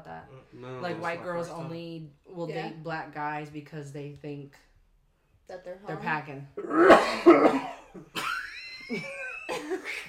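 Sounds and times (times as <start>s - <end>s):
speech: 0.2s - 4.7s, 5.5s - 8.3s, 8.9s - 10.0s
person clearing throat: 6.6s - 8.4s
person coughing from an insect caught in the throat: 6.6s - 8.4s.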